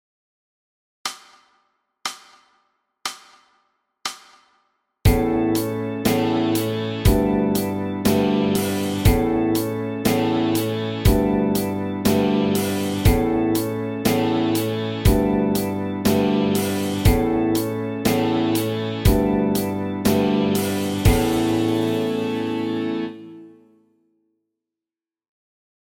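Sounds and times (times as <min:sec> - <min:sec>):
rock song on D string: 0:05.1 - 0:23.4.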